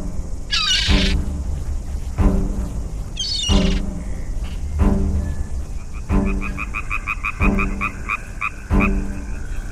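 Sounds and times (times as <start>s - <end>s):
faint higher chirping calls: 0.0s - 9.7s
frog croaking: 0.5s - 1.2s, 3.2s - 4.3s, 5.8s - 9.7s.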